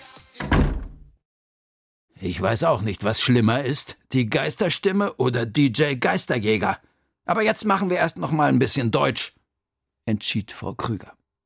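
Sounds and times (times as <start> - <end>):
door swinging shut: 0.4 - 1.2
speech: 2.2 - 9.4, 10.1 - 11.2.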